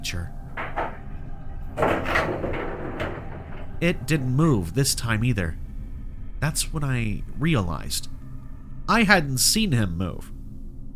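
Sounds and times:
speech: 0:00.0 - 0:00.4, 0:03.8 - 0:05.6, 0:06.4 - 0:08.2, 0:08.9 - 0:10.4
elevator doors grinding and creaking open: 0:00.0 - 0:05.4
low rumble: 0:00.0 - 0:10.9.

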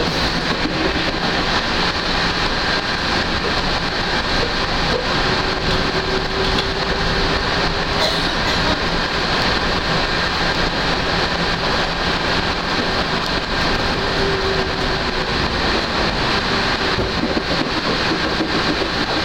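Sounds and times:
train rolling along the track heard from on board: 0:00.0 - 0:19.2.

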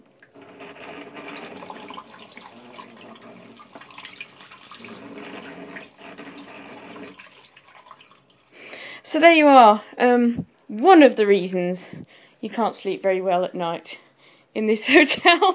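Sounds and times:
hot water running from a hotel sink tap: 0:00.2 - 0:08.5
speech: 0:09.1 - 0:14.0, 0:14.6 - 0:15.5.

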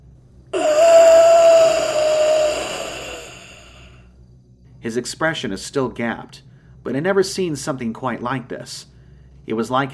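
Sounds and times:
man at the top of a ladder giving a raspy gasp: 0:00.6 - 0:04.0
man's strained, groaning breath: 0:00.6 - 0:04.0
speech: 0:04.8 - 0:08.9, 0:09.5 - 0:09.9.

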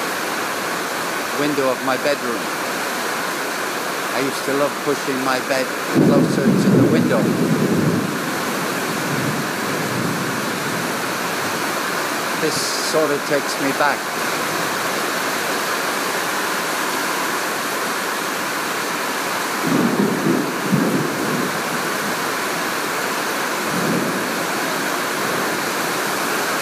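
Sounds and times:
rain falling: 0:00.0 - 0:26.6
speech: 0:01.4 - 0:02.6, 0:04.2 - 0:07.6, 0:12.4 - 0:14.3.

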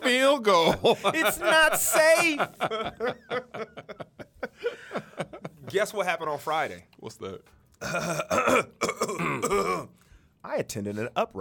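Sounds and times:
laughter: 0:00.0 - 0:06.0
speech: 0:00.4 - 0:03.8, 0:05.7 - 0:11.3
person coughing with rough throat-clearing coughs: 0:07.8 - 0:10.0.

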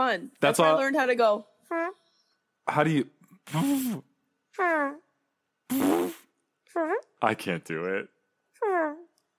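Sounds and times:
speech: 0:00.0 - 0:02.0, 0:02.7 - 0:05.0, 0:05.7 - 0:09.0
mouth-made fart noises imitated by a voice: 0:03.5 - 0:05.0, 0:05.7 - 0:06.4.

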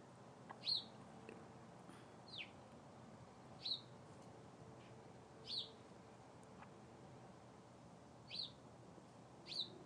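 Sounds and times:
faint hiss: 0:00.0 - 0:09.8
bird chirping in a tree in the neighbor's yard: 0:00.5 - 0:01.0, 0:02.2 - 0:02.6, 0:03.6 - 0:04.0, 0:05.4 - 0:05.8, 0:08.2 - 0:08.6, 0:09.4 - 0:09.8.

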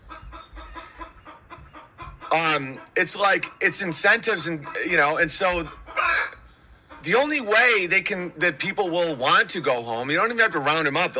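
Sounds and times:
chicken clucking: 0:00.0 - 0:08.4
speech: 0:02.3 - 0:05.8, 0:07.0 - 0:11.1.

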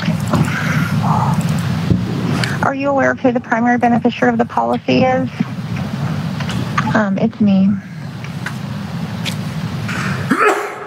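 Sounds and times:
low rumble: 0:00.2 - 0:09.9
speech: 0:02.7 - 0:05.6, 0:06.9 - 0:07.9
person sneezing: 0:10.0 - 0:10.8.

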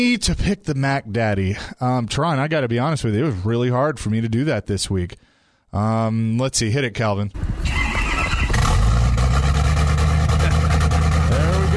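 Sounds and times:
speech: 0:00.0 - 0:07.8
F-150 truck engine cranking, starting and revving: 0:07.4 - 0:11.7.

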